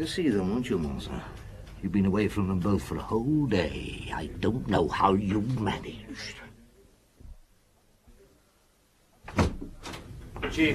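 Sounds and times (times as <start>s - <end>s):
speech: 0.0s - 6.5s, 10.5s - 10.7s
door thudding shut: 9.2s - 10.1s.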